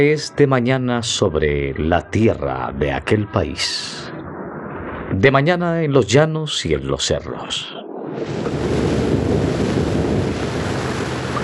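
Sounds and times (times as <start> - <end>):
speech: 0.0 - 4.1, 5.1 - 8.8
gusting wind by the shore: 0.0 - 11.4
sea surf washing against the shore: 8.0 - 11.4.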